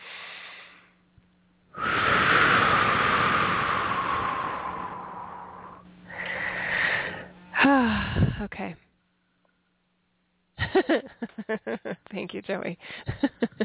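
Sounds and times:
deep breath: 0.0 - 1.0, 1.7 - 8.4
speech: 8.4 - 8.9, 10.9 - 13.4.

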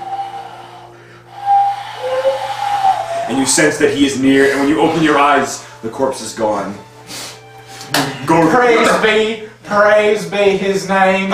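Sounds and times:
wind whistling: 0.0 - 4.8
speech: 3.3 - 6.9, 7.9 - 11.3.

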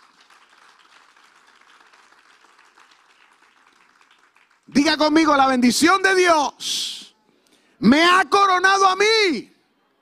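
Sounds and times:
crowd applauding during a Christian sermon: 0.0 - 5.6
speech: 4.7 - 7.0, 7.8 - 9.5.

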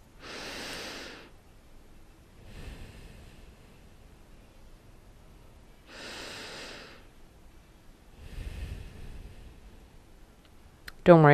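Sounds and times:
slow deep breathing: 0.0 - 1.4, 2.3 - 7.2, 8.1 - 10.4
speech: 11.1 - 11.3.

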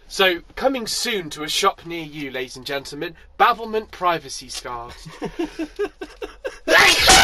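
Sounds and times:
speech: 0.1 - 7.2
laughter: 4.9 - 7.0
person sneezing: 6.6 - 7.2.

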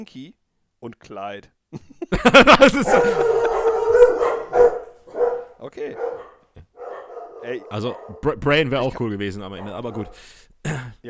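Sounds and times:
speech: 0.0 - 4.8, 5.6 - 6.4, 7.4 - 11.0
laughter: 1.8 - 4.6
dogs howling in a chorus: 2.6 - 10.2.

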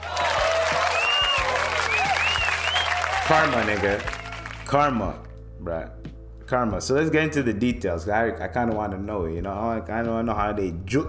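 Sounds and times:
crowd applause and cheering: 0.0 - 4.9
high whistles from a crowd: 0.7 - 3.2
speech: 3.3 - 11.0.

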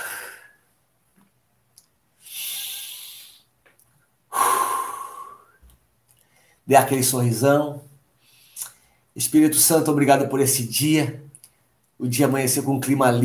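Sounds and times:
deep breathing during a guided breathing exercise: 0.0 - 0.7, 2.2 - 3.5, 4.3 - 6.7
speech: 6.7 - 7.9, 8.6 - 11.3, 12.0 - 13.2.

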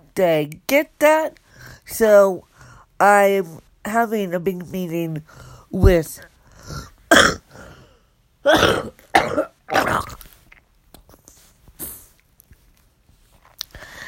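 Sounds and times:
speech: 0.2 - 7.7, 8.4 - 10.2
exhausted person having a coughing fit: 7.1 - 7.8, 8.5 - 10.0.

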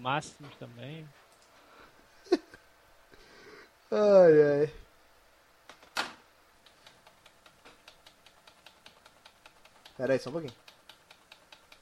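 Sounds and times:
speech: 0.0 - 1.2, 3.9 - 4.8, 10.0 - 10.6
computer keyboard typing: 6.6 - 11.7.

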